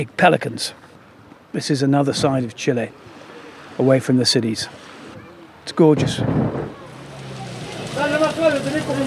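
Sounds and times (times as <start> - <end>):
speech: 0.0 - 0.9, 1.5 - 3.2, 3.8 - 4.8, 5.6 - 6.8
water hose spraying down fishing boats: 6.8 - 9.0.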